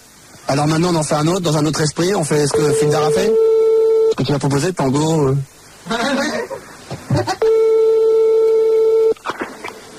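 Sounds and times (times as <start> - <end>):
speech: 0.5 - 3.5, 4.2 - 6.4
telephone ringing during a prank call: 2.5 - 4.2, 7.4 - 9.2.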